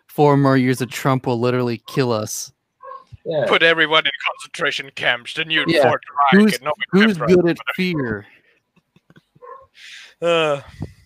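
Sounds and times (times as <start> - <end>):
speech: 0.2 - 2.6, 3.2 - 8.3, 9.8 - 10.9
dog barking: 2.8 - 3.1, 9.4 - 9.7
human vocal sounds: 3.3 - 8.3, 9.8 - 10.9.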